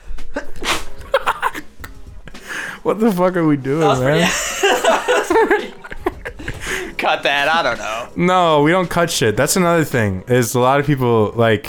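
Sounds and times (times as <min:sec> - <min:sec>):
laughter: 0:00.4 - 0:02.8, 0:03.8 - 0:08.2
sneeze close to the microphone: 0:00.6 - 0:01.0
speech: 0:02.8 - 0:05.0, 0:07.0 - 0:11.6.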